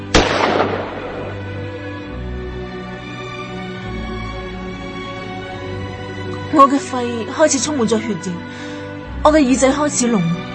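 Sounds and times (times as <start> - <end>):
gunshot: 0.0 - 1.9
speech: 6.5 - 10.5.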